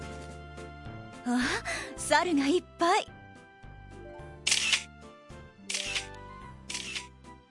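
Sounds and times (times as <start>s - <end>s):
speech: 1.3s - 3.1s
camera shutter clicking at a hot spring: 4.5s - 4.9s, 5.7s - 7.1s.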